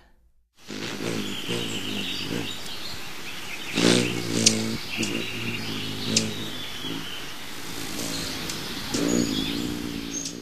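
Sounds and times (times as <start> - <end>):
Allen's hummingbird in North America: 0.6 - 10.4.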